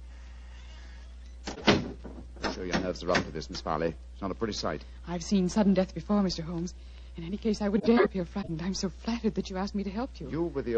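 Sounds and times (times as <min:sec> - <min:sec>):
low steady hum: 0:00.0 - 0:10.7
door swinging shut: 0:01.5 - 0:03.4
speech: 0:02.6 - 0:10.7.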